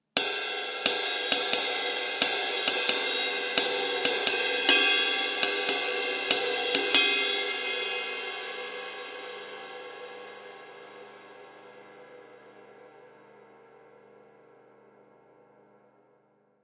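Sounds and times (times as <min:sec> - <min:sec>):
Meinl B21MR cymbal: 0:00.0 - 0:16.1.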